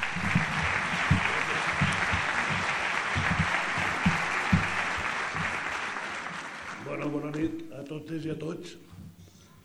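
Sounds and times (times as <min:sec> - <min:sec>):
crowd clapping steadily and energetically: 0:00.0 - 0:07.4
speech: 0:07.8 - 0:08.9.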